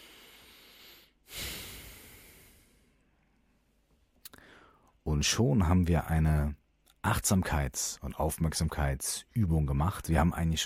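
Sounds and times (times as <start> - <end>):
deep breath in and out during a mindfulness exercise: 0.0 - 3.1, 4.3 - 5.0
speech: 5.1 - 10.6.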